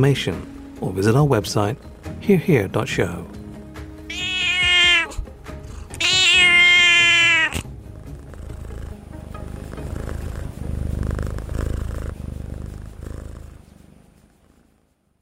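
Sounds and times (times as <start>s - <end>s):
speech: 0.0s - 3.4s
Singapura cat meowing: 4.0s - 7.7s
low rumbling background noise: 7.6s - 15.2s.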